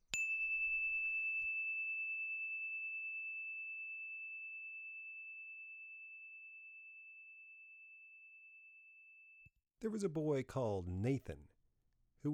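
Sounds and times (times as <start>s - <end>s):
story bell ding rung as a signal before a story: 0.1s - 9.4s
speech: 9.8s - 11.5s.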